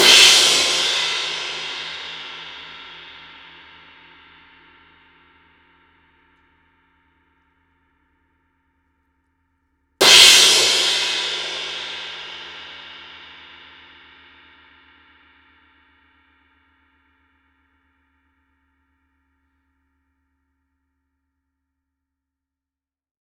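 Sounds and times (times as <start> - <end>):
crash cymbal: 0.0 - 4.6, 10.0 - 14.2.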